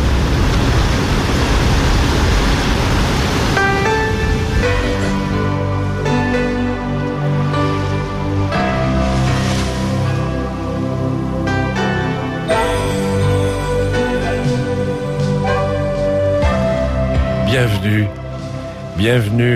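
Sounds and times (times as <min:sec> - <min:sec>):
sea waves washing onto the shore: 0:00.0 - 0:06.6, 0:07.4 - 0:12.0
sustained musical tones: 0:03.6 - 0:19.5
speech: 0:19.0 - 0:19.5.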